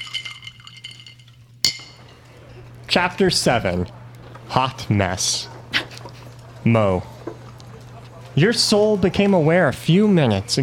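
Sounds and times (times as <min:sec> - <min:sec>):
glasses clinking in a toast: 0:00.0 - 0:03.0
low steady hum: 0:00.0 - 0:10.6
speech: 0:02.9 - 0:05.5, 0:06.6 - 0:07.1, 0:08.4 - 0:10.6.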